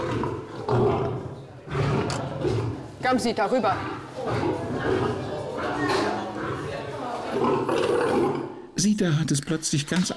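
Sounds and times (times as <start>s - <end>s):
lion roaring: 0.0s - 3.0s, 3.6s - 8.7s
speech: 3.0s - 4.7s, 8.8s - 10.1s.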